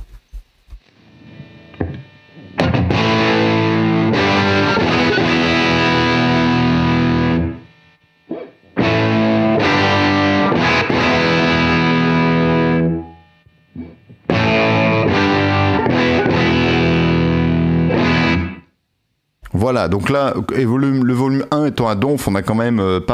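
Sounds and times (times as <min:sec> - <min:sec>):
distorted electric guitar strumming through amp model emulations: 0:00.9 - 0:18.7
speech: 0:19.6 - 0:23.1.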